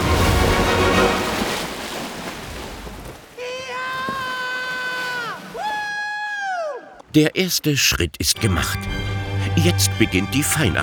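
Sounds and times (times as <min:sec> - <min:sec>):
splash of something crash-landing into water: 0:00.0 - 0:06.0
speech: 0:07.1 - 0:10.8.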